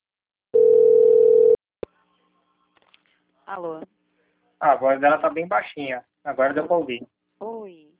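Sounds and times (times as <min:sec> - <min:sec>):
telephone ringing tone on a call: 0:00.6 - 0:01.6
speech: 0:03.5 - 0:04.0, 0:04.6 - 0:07.9.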